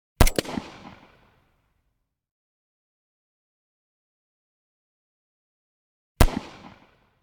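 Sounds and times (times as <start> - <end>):
pistol gunshot: 0.2 - 1.2, 6.2 - 7.0.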